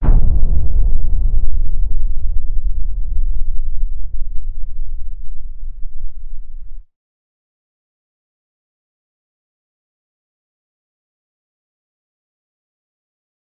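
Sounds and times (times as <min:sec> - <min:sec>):
missile: 0:00.0 - 0:06.8.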